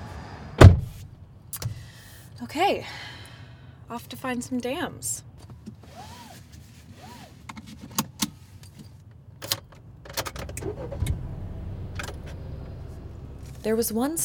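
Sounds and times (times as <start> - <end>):
car engine rumble on a drive along the Hudson River: 0.0 - 2.3, 5.3 - 14.2
speech: 2.4 - 3.1, 3.9 - 5.3, 13.6 - 14.2
car power window whirring: 10.4 - 13.7.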